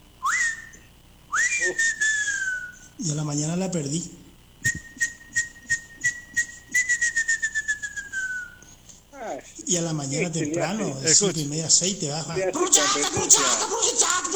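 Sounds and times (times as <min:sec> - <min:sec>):
person whistling an imitation of an elegant crested tinamou call: 0:00.2 - 0:02.9, 0:04.6 - 0:08.7
speech: 0:03.0 - 0:04.9, 0:09.7 - 0:14.3
laughter: 0:09.6 - 0:14.3.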